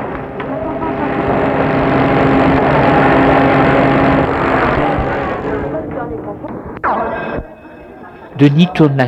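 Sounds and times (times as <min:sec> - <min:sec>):
car engine rumbling as the vehicle pulls away: 0:00.0 - 0:06.8
speech: 0:08.4 - 0:09.0.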